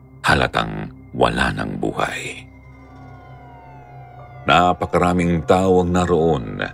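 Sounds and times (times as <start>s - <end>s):
speech: 0.3s - 2.5s, 4.4s - 6.7s
emergency vehicle siren wailing at a road accident scene: 1.9s - 6.7s.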